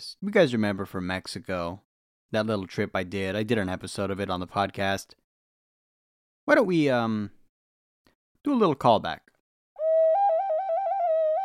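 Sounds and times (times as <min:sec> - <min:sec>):
speech: 0:00.0 - 0:05.2, 0:06.4 - 0:07.4, 0:08.4 - 0:09.3
rain whistle blown steadily: 0:09.8 - 0:11.4.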